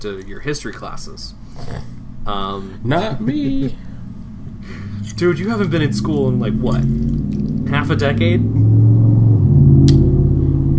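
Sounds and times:
speech: 0:00.0 - 0:03.9, 0:04.6 - 0:08.7
heavy truck engine rumbling past: 0:02.7 - 0:10.7
laughter: 0:02.9 - 0:03.9.

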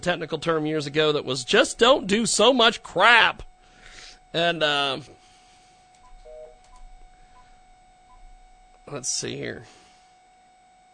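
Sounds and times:
speech: 0:00.0 - 0:03.5, 0:04.3 - 0:05.2, 0:08.9 - 0:09.8
quiet steady hum: 0:00.0 - 0:10.9
telephone keypad tones dialing a number: 0:05.9 - 0:08.4.

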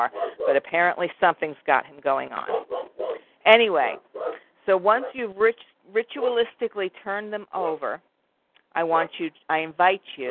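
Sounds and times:
speech: 0:00.0 - 0:02.6, 0:03.4 - 0:04.1, 0:04.7 - 0:08.1, 0:08.7 - 0:10.2
dog barking in short sharp woofs: 0:00.1 - 0:00.6, 0:02.5 - 0:03.2, 0:04.0 - 0:05.2.

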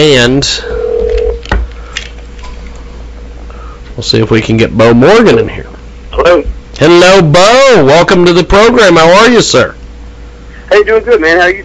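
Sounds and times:
speech: 0:00.0 - 0:00.8, 0:04.0 - 0:09.8, 0:10.7 - 0:11.6
telephone line steady electronic beep: 0:00.6 - 0:01.4.

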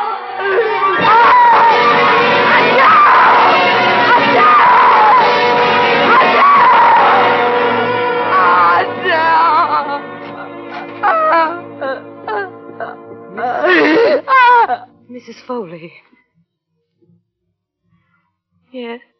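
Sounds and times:
woman screaming in long wavering wails: 0:00.4 - 0:10.0, 0:11.0 - 0:11.6, 0:13.4 - 0:14.8
speech: 0:15.2 - 0:16.2.

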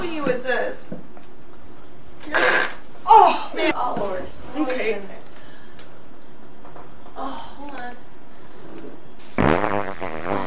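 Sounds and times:
steady noise: 0:00.0 - 0:10.4
speech: 0:00.2 - 0:01.1, 0:03.6 - 0:05.2
long buzzy fart: 0:02.3 - 0:02.8, 0:08.8 - 0:10.4.

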